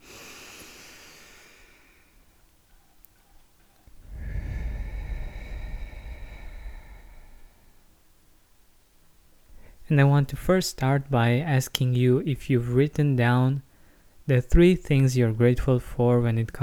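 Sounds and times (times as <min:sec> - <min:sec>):
deep breath in and out taken as a calming exercise: 0:00.0 - 0:02.2, 0:03.9 - 0:08.1
speech: 0:09.9 - 0:13.7, 0:14.3 - 0:16.6.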